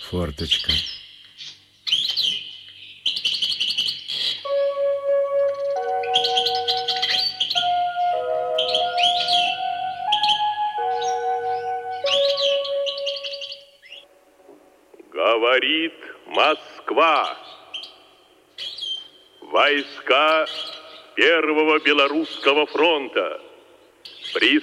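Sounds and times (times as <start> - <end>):
bird singing heard through an opened window: 0.0 - 14.1, 17.0 - 24.6
speech: 0.1 - 1.0, 16.4 - 17.4, 19.6 - 23.5, 24.4 - 24.6.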